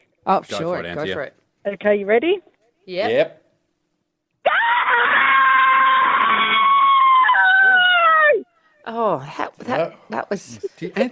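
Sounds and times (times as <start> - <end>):
speech: 0.2 - 3.4, 8.8 - 11.0
woman screaming: 4.4 - 8.5.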